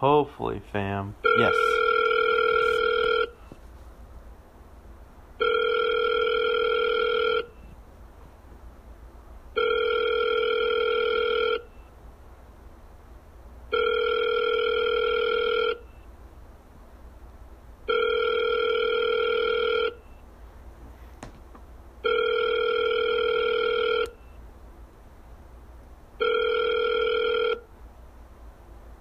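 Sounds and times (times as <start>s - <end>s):
speech: 0.0s - 1.8s
electronic ringback tones of an outgoing telephone call: 1.2s - 3.5s, 5.4s - 7.7s, 9.6s - 11.8s, 13.7s - 16.0s, 17.9s - 20.2s, 22.0s - 24.3s, 26.2s - 27.7s.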